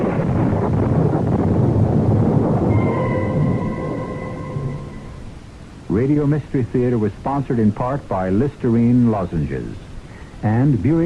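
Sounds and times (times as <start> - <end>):
deep thundery rumble: 0.0 - 5.9
heavy continuous storm wind: 0.0 - 11.0
thin sustained whistling tone: 2.7 - 5.3
speech: 6.0 - 11.0.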